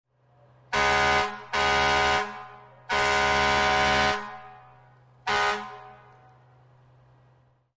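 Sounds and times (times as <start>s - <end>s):
American fire truck horn blast: 0.7s - 6.5s.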